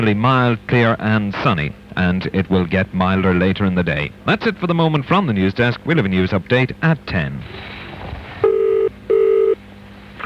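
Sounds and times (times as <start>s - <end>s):
speech: 0.0s - 7.7s
telephone line electronic ring tones: 8.4s - 9.6s.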